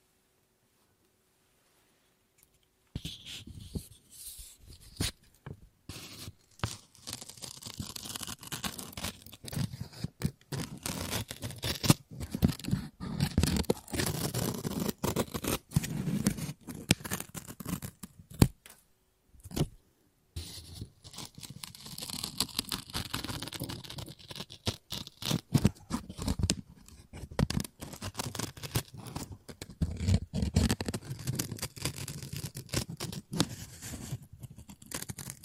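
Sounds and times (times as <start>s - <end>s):
scissors snipping and cutting through paper: 6.0s - 18.5s, 21.1s - 35.4s.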